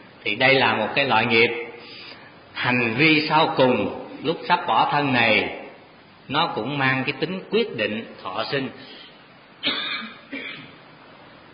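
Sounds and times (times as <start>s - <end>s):
speech: 0.2s - 1.6s, 2.6s - 5.6s, 6.3s - 9.0s
person coughing to clear the throat: 9.6s - 10.8s.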